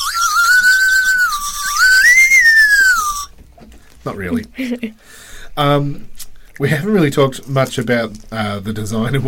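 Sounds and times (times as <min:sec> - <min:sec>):
whistle pop candy whistle blown: 0:00.0 - 0:03.3
speech: 0:04.1 - 0:09.2.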